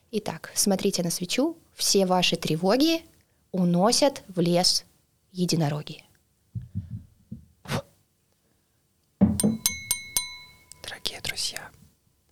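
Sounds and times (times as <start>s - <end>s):
speech: 0.1s - 6.1s
champagne glasses clinking: 9.4s - 11.4s
soft breathy whispering: 10.8s - 11.8s.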